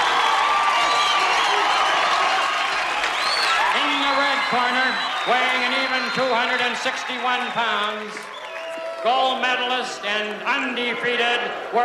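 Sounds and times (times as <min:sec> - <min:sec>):
whoops: 0:00.0 - 0:06.3, 0:08.2 - 0:09.1
scattered clapping: 0:00.0 - 0:09.0
large arena crowd cheering before boxing match: 0:00.0 - 0:11.8
speech: 0:04.5 - 0:08.3, 0:09.0 - 0:11.8.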